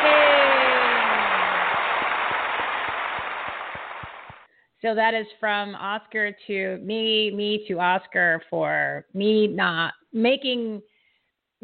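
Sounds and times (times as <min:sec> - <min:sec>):
crowd applause: 0:00.0 - 0:04.5
distinct evenly spaced claps: 0:00.0 - 0:04.5
speech: 0:04.8 - 0:10.9.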